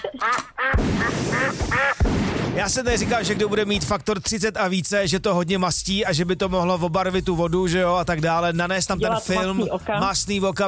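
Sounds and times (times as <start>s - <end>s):
duck quacking: 0.0s - 2.0s
speech: 2.6s - 10.6s.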